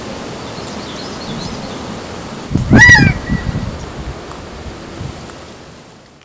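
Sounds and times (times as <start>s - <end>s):
Gambel's quail Callipepla gambelii nasal call: 2.7s - 3.6s.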